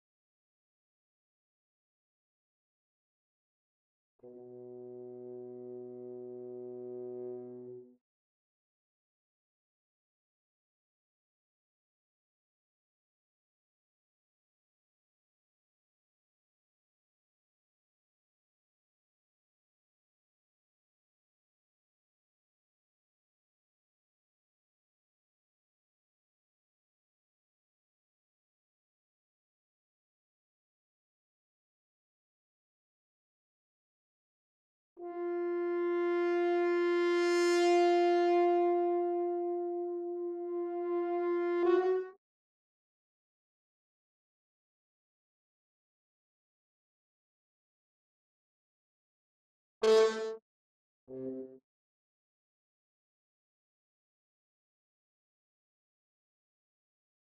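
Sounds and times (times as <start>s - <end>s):
horn: 4.2s - 8.0s, 35.0s - 42.2s, 49.8s - 50.4s, 51.1s - 51.6s.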